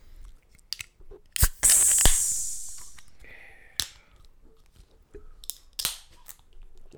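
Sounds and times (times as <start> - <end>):
beer can cracked open with its tab breaking off: 1.4 - 3.9
hiss of escaping gas from a beer can: 1.4 - 3.9.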